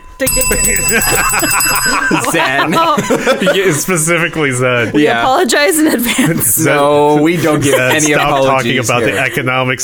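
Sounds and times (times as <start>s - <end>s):
timer alarm ringing: 0.0s - 3.6s
speech: 0.2s - 9.8s
laughter: 0.8s - 4.4s, 7.1s - 9.8s.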